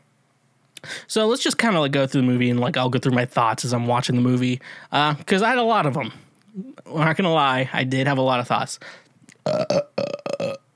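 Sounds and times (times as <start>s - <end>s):
speech: 0.8s - 9.8s
loud burp in rough croaking pulses: 9.4s - 10.7s.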